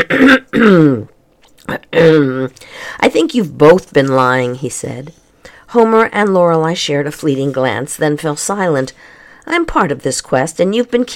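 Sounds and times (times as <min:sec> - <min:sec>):
narrator clearing throat voicing a character: 0:00.0 - 0:02.6
speech: 0:00.1 - 0:01.0, 0:02.0 - 0:11.1.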